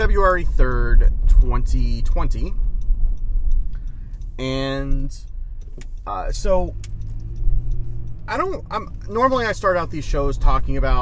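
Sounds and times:
car interior road noise while driving: 0:00.0 - 0:11.0
speech: 0:00.1 - 0:02.6, 0:04.4 - 0:06.9, 0:08.3 - 0:11.0.

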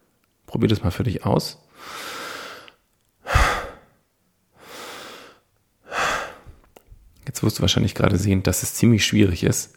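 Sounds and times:
speech: 0:00.5 - 0:02.0, 0:07.4 - 0:09.7
slow deep breaths through mouth and nose simultaneously: 0:01.7 - 0:04.0, 0:04.6 - 0:06.7.

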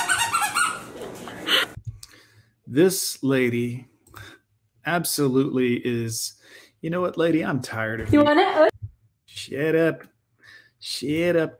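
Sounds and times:
squeaky dog toy shaped like an ice cream cone or cow squeaking: 0:00.0 - 0:01.2
speech: 0:02.7 - 0:08.7, 0:09.4 - 0:10.1, 0:10.8 - 0:11.5.

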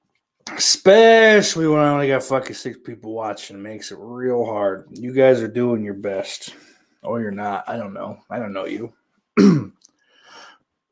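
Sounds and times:
speech: 0:00.5 - 0:09.5
throat-clearing cough: 0:09.4 - 0:09.8.

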